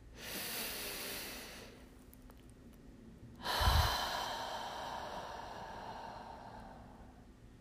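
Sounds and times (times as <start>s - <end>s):
deep slow breath during a guided calming exercise: 0.0s - 1.8s, 3.4s - 7.4s.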